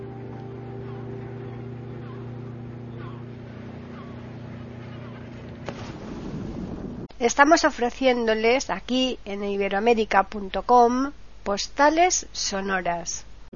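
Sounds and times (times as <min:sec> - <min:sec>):
small motorboat engine droning: 0:00.0 - 0:07.1
motorboat hull thumping on an ocean wave: 0:03.1 - 0:07.1
wind noise: 0:05.5 - 0:07.1
speech: 0:07.2 - 0:13.5.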